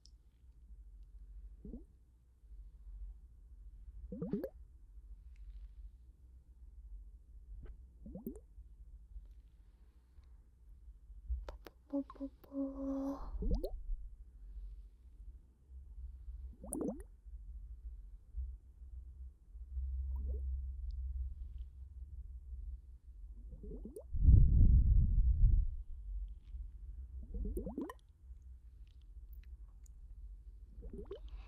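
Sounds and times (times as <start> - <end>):
low steady hum: 0.0 - 31.4
water dripping: 16.6 - 17.1, 27.3 - 30.0, 30.8 - 31.4.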